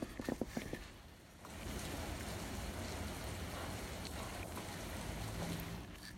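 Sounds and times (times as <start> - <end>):
rain falling outside: 0.8 - 6.1.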